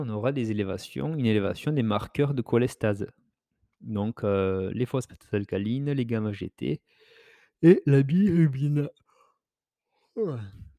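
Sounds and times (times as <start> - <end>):
speech: 0.0 - 3.2, 3.8 - 7.0, 7.6 - 9.0, 10.2 - 10.6
person yawning: 10.2 - 10.7.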